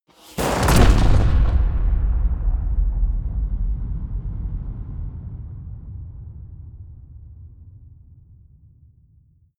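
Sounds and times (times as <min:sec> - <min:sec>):
shotgun firing with huge reverb: 0:00.3 - 0:05.0.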